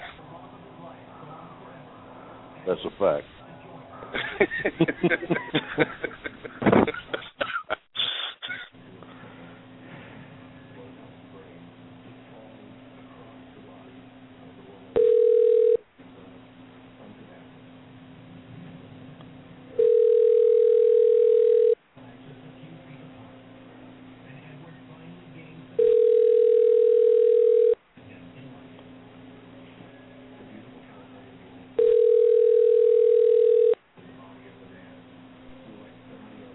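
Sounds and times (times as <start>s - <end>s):
speech: 2.6s - 3.4s, 4.1s - 7.4s
laughter: 4.0s - 8.7s
telephone call ringback tones: 15.0s - 15.8s, 19.8s - 21.8s, 25.8s - 27.8s, 31.8s - 33.8s.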